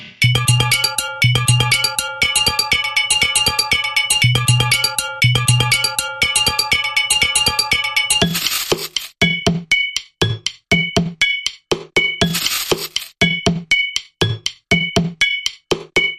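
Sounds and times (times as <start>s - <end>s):
jarred percussion bumper: 0.2s - 6.7s, 7.4s - 16.1s.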